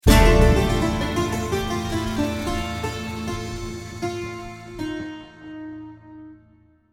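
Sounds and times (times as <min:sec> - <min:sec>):
lost round sound effect: 0:00.0 - 0:05.4.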